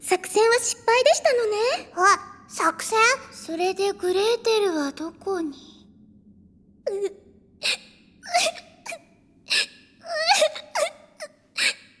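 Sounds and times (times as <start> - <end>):
speech: 0.1 - 5.7, 6.9 - 8.7
girl sobbing and whimpering: 6.9 - 8.6, 9.5 - 10.9.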